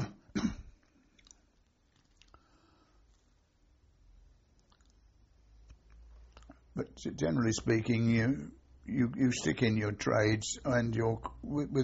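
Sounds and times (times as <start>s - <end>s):
sharp cough: 0.0s - 0.8s
speech: 6.8s - 11.8s.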